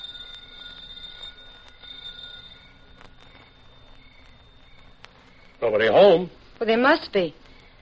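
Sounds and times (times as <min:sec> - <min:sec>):
doorbell ringing: 0:00.0 - 0:03.2
faint hum: 0:00.0 - 0:07.8
speech: 0:05.6 - 0:07.4.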